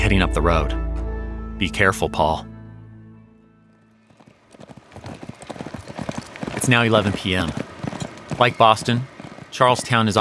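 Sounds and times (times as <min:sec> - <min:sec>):
low droning tone: 0:00.0 - 0:04.0
speech: 0:00.1 - 0:00.8, 0:01.6 - 0:02.5, 0:06.6 - 0:07.7, 0:08.4 - 0:10.2
horse hooves clip-clopping: 0:03.8 - 0:10.2.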